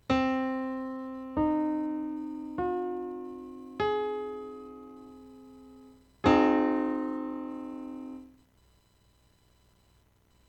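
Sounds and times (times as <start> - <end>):
Orwell tetrad chords in 22 equal divisions of the octave: 0.1 - 8.3.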